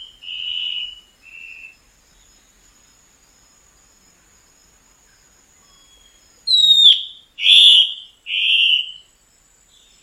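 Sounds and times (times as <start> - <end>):
black-spotted bare-eye singing loud whistled notes: 6.5 - 9.0.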